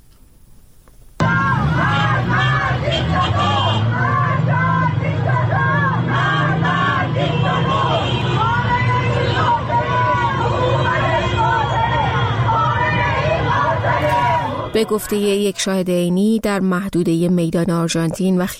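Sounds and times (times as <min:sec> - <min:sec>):
constant rumble of traffic: 0:00.0 - 0:18.5
large crowd of street protesters chanting anti-government slogans: 0:01.2 - 0:15.8
street hubbub: 0:01.2 - 0:16.0
speech: 0:14.8 - 0:18.5.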